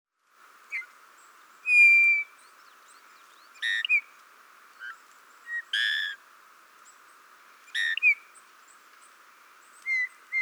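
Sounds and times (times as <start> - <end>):
faint steady hiss: 0.1 - 10.4
Eurasian bullfinch Pyrrhula pyrrhula piping whistles: 1.6 - 4.1, 7.7 - 8.3, 9.7 - 10.4.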